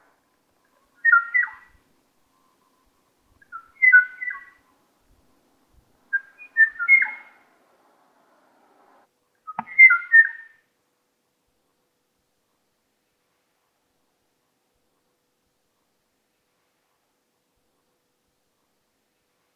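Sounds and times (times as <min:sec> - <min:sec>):
male Kauai O'o bird calling for a mate: 0:01.0 - 0:01.8, 0:03.4 - 0:04.6, 0:06.1 - 0:07.4, 0:09.5 - 0:10.6.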